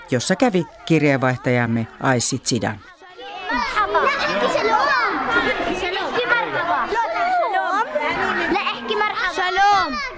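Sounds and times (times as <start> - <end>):
children chattering cheerfully in a schoolyard: 0.0 - 10.1
speech: 0.1 - 4.6.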